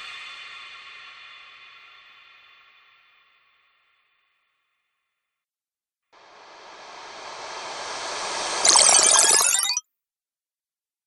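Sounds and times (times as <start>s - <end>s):
magic spell sound effects: 6.2s - 9.8s.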